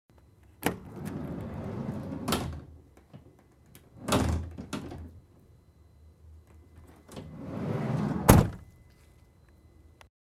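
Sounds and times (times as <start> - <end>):
delivery van sliding door: 0.7 - 2.8, 4.0 - 5.2, 6.9 - 8.6.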